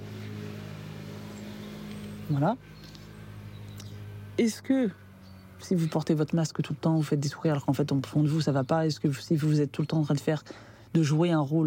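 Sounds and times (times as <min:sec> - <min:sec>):
scooter engine droning outside: 0:00.0 - 0:07.5
speech: 0:02.3 - 0:03.0, 0:04.4 - 0:05.0, 0:05.6 - 0:11.6.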